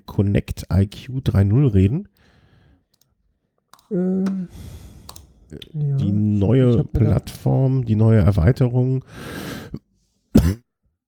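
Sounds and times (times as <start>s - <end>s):
speech: 0.2s - 2.2s, 3.9s - 4.8s, 5.5s - 9.8s, 10.4s - 10.6s
single harsh cough: 10.3s - 10.7s
throat-clearing rasp: 10.4s - 10.7s.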